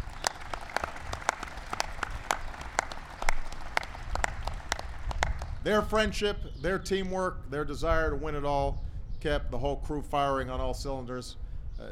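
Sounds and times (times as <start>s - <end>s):
scattered applause from a small audience: 0.0s - 5.6s
speech: 5.6s - 11.8s.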